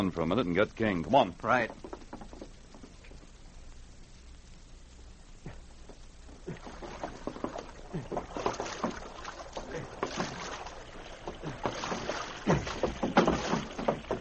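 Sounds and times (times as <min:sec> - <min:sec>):
speech: 0:00.0 - 0:01.9
steady watery wash: 0:00.0 - 0:14.1
canoe paddle dipping and pulling through water: 0:01.0 - 0:03.4, 0:05.5 - 0:14.1.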